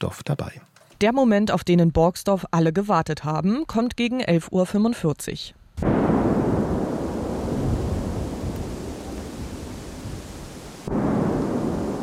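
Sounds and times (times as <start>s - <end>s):
speech: 0.0s - 5.6s
controlled detonation of unexploded bomb: 5.8s - 12.0s.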